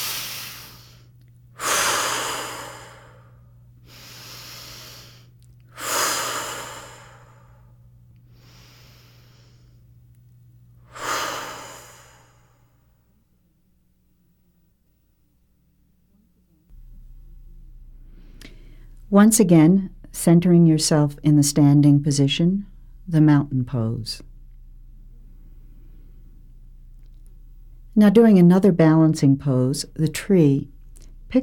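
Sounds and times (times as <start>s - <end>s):
deep breathing in and out during a standing exercise routine: 0.0s - 10.0s, 10.8s - 12.9s, 18.0s - 19.0s, 25.3s - 26.6s
faint low hum: 0.0s - 31.4s
speech: 19.1s - 24.3s, 28.0s - 31.4s.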